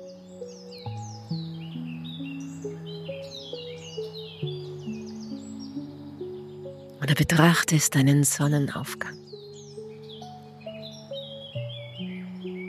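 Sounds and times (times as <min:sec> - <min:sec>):
birds chirping and singing: 0:00.0 - 0:12.6
speech: 0:07.0 - 0:09.2.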